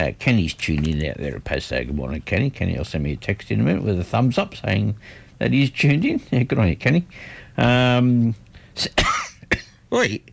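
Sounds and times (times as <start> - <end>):
speech: 0.0 - 10.3
person clearing throat with drawn-out voiced rasp: 8.9 - 9.8
person coughing harshly: 8.9 - 9.8.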